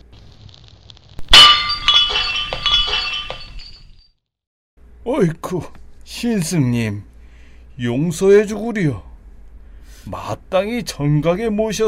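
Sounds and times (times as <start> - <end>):
golden cup thrown into the air and shattering: 1.2 - 3.9
tinkling clinking fragments of a golden cup: 1.2 - 4.0
speech: 5.0 - 7.1, 7.8 - 9.1, 10.0 - 11.8.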